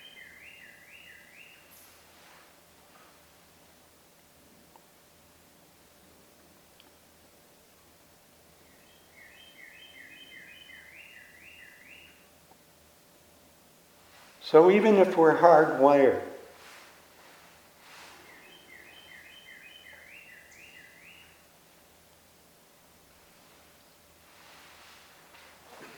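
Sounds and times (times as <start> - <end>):
bird singing rapid repeated chirping notes: 0.0 - 2.0, 8.6 - 12.3, 18.2 - 21.5
steady hiss of background noise: 0.0 - 25.9
speech: 14.5 - 16.3.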